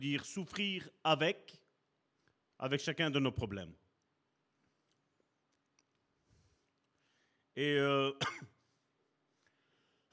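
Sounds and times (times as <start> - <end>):
speech: 0.0 - 1.6, 2.6 - 3.8, 7.6 - 8.5
single harsh loud cough: 8.2 - 8.6.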